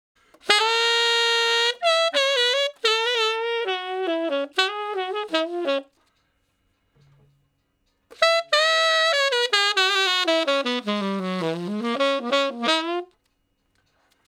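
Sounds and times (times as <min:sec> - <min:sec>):
tenor saxophone playing slow blues in D flat: 0:00.3 - 0:06.0, 0:08.1 - 0:13.2.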